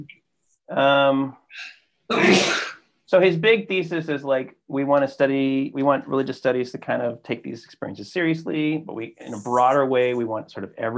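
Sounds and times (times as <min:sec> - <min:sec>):
speech: 0:00.0 - 0:10.9
single loud sneeze: 0:02.1 - 0:02.8.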